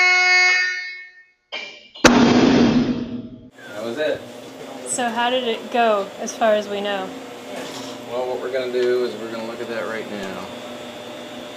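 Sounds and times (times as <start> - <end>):
loud blaring horn-like firing range alarm: 0.0 - 1.2
gun loaded with hydrogen gas and gunpowder charge firing: 2.0 - 3.6
speech: 5.0 - 7.3, 8.1 - 10.6.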